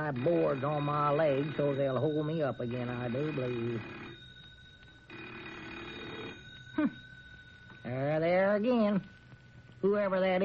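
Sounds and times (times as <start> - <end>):
telephone bell ringing: 0.0 - 9.6
faint steady hum: 0.0 - 10.4
speech: 0.1 - 4.1, 6.8 - 7.0, 7.8 - 9.2, 9.8 - 10.4.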